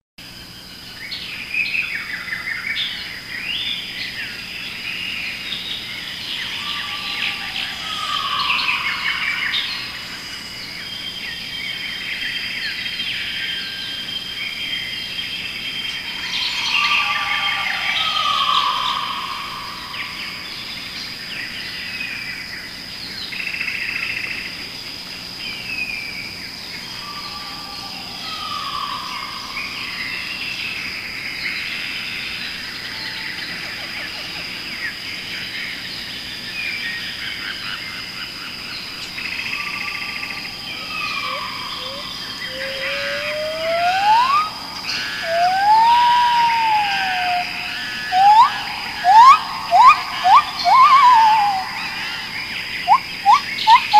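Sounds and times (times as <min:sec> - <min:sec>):
jungle forest ambience: 0:00.2 - 0:53.9.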